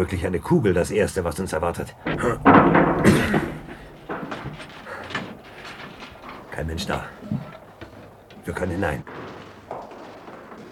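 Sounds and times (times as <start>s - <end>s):
speech: 0.0s - 3.4s, 6.6s - 7.4s, 8.5s - 9.1s
wooden door rattling and creaking as it gives way: 1.8s - 10.6s
heavy wooden door being kicked in: 2.0s - 8.6s.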